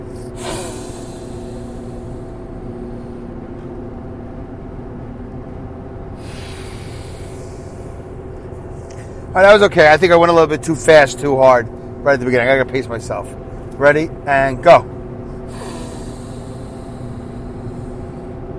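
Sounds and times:
heavy forceful breathing during a breathing exercise: 0.0s - 3.6s, 6.1s - 9.6s, 14.6s - 18.5s
speech: 9.4s - 15.0s.

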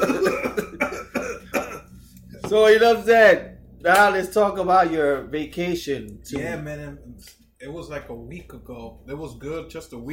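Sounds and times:
speech: 0.0s - 0.4s, 2.5s - 10.1s
harsh coughing: 0.0s - 1.9s.

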